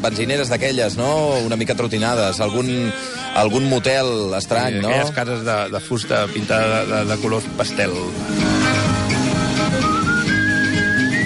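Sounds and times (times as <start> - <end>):
speech: 0.0 - 8.7
upbeat cheerful music: 0.0 - 11.2
bright whistled melody: 9.5 - 11.2.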